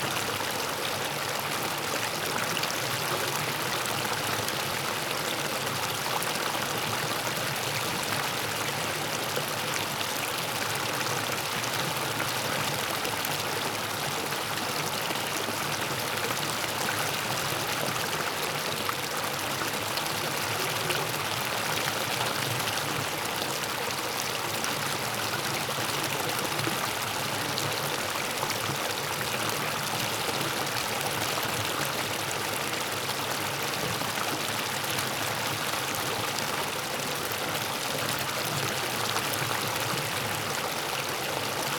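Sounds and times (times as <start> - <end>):
creek cascading over rocks: 0.0 - 41.7.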